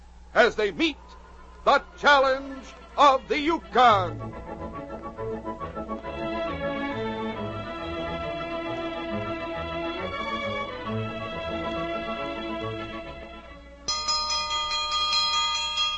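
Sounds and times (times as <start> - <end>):
dense sustained musical backdrop: 0.0 - 13.9
speech: 0.4 - 4.8
bell ringing to call people to breakfast: 13.9 - 15.9.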